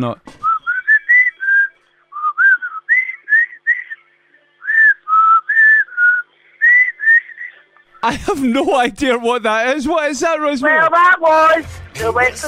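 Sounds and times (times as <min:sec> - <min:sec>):
speech: 0:00.0 - 0:00.4, 0:08.0 - 0:12.4
person whistling a melodic tune: 0:00.4 - 0:03.9, 0:04.6 - 0:07.2.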